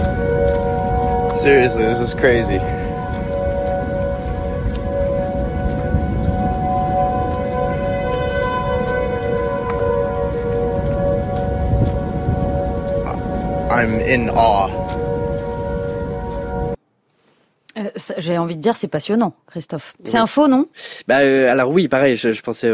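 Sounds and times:
four tornado sirens wailing in a dissonant chord: 0.0s - 16.8s
speech: 1.4s - 2.8s, 13.8s - 14.9s, 18.2s - 22.7s.

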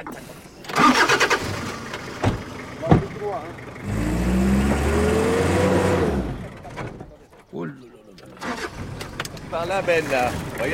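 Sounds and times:
4x4 vehicle engine revving on sand: 0.7s - 7.0s, 8.4s - 10.7s
sharp knocks: 2.2s - 3.2s
speech: 3.3s - 4.0s, 9.6s - 10.7s.

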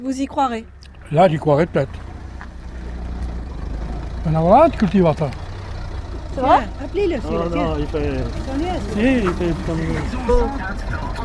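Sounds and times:
speech: 0.0s - 2.1s, 4.2s - 5.4s, 6.4s - 11.2s
car engine idling as the car pulls up: 0.0s - 11.2s.

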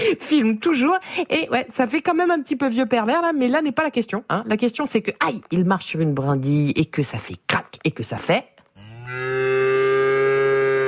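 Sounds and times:
speech: 0.0s - 9.3s
cow mooing in a milk advertisement: 8.8s - 10.8s.

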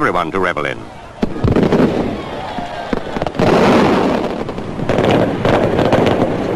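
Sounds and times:
faint crowd voices: 0.0s - 6.5s
outdoor fireworks display booming and crackling: 0.0s - 6.5s
speech: 0.1s - 1.6s.

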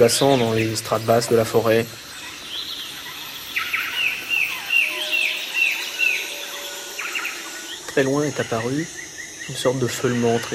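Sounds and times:
speech: 0.0s - 2.1s, 8.0s - 10.5s
hum of insects in the Amazon rainforest: 0.0s - 10.5s
small black-headed insectivorous bird giving trumpeting notes: 2.2s - 9.5s.

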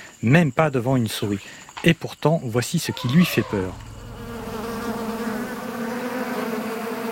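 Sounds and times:
speech: 0.2s - 3.9s
many bees buzzing: 2.9s - 7.0s.

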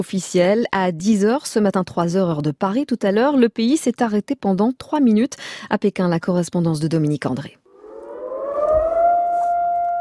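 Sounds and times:
speech: 0.0s - 7.6s
civil defense sirens sounding across China for national mourning: 7.7s - 9.9s.

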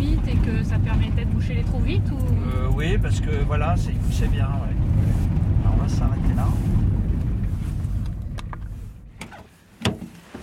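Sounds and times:
car engine rumbling low as the vehicle stops: 0.0s - 10.4s
speech: 0.5s - 7.0s
solid thunk of a car trunk opened: 8.4s - 10.4s.

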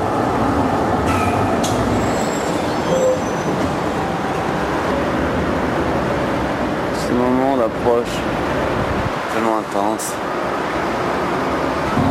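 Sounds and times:
tram wheels squealing and clanking on the rails: 0.0s - 5.7s
tram rumbling through a busy city intersection: 0.0s - 12.0s
speech: 7.7s - 8.5s, 9.6s - 10.4s.

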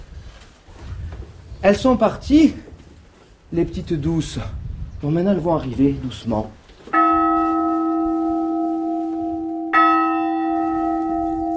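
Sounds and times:
speech: 1.6s - 2.7s, 3.5s - 7.0s
large church bell ringing: 6.9s - 11.5s.

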